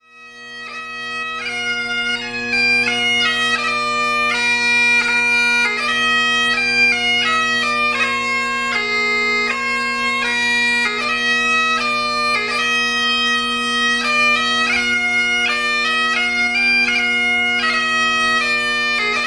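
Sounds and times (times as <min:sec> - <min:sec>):
bagpiper playing: 0:00.0 - 0:19.2.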